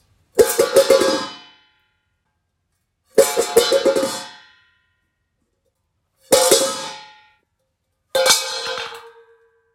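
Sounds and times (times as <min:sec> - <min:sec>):
metal dog bowl falling: 0:00.4 - 0:01.8, 0:03.1 - 0:04.8, 0:06.2 - 0:07.4, 0:08.1 - 0:09.7.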